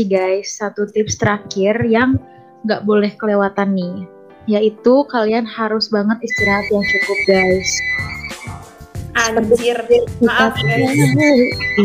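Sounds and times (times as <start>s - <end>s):
speech: 0.0s - 8.1s, 9.2s - 11.8s
home landline telephone ringing with a shrill electronic trill: 6.4s - 8.4s, 10.4s - 11.8s.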